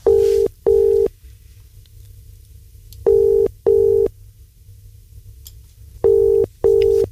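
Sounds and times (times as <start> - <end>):
paired electronic rings of an outgoing phone call ringback tone: 0.0 - 1.1, 3.1 - 4.1, 6.0 - 7.1
low hum: 0.0 - 7.1.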